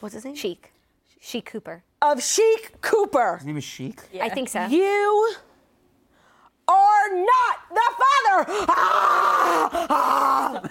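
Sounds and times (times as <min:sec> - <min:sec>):
speech: 0:00.0 - 0:05.5, 0:06.7 - 0:10.6
person roaring in imitation of a fire-breathing dragon: 0:08.6 - 0:10.6.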